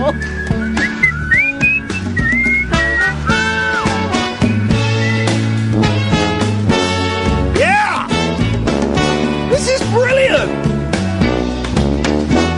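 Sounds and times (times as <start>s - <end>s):
whistled melody with bending, sliding notes: 0.0s - 6.2s
busy band backing of bass and percussion: 0.0s - 12.5s
speech: 0.1s - 0.4s.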